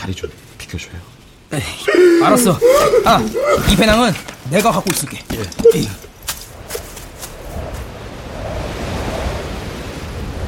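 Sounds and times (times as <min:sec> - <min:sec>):
speech: 0:00.0 - 0:06.1
laughter: 0:01.9 - 0:04.2
strong gust of wind roaring in a broad rushing wash: 0:07.3 - 0:10.4.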